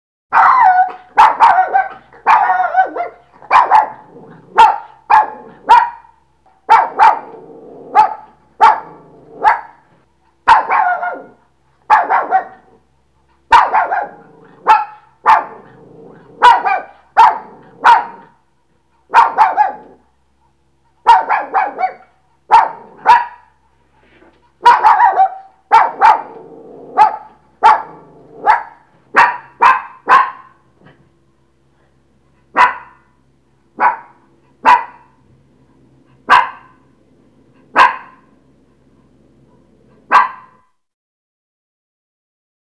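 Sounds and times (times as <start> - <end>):
dog: 0.3 - 9.8, 10.5 - 12.7, 13.5 - 15.8, 16.4 - 18.3, 19.1 - 20.0, 21.0 - 23.5, 24.6 - 31.0, 32.6 - 33.1, 33.8 - 35.2, 36.2 - 36.8, 37.7 - 38.3, 39.5 - 40.7.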